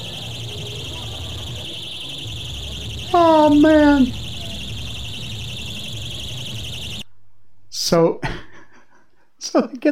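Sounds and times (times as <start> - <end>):
shrill continuous alarm ringing from balloons on the ceiling: 0.0 - 7.0
speech: 3.1 - 4.2, 7.9 - 8.4, 9.5 - 9.9.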